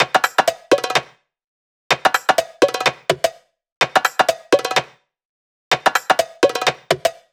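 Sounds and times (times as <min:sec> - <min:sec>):
drum kit: 0:00.0 - 0:01.0, 0:01.9 - 0:03.2, 0:03.8 - 0:04.9, 0:05.7 - 0:07.2.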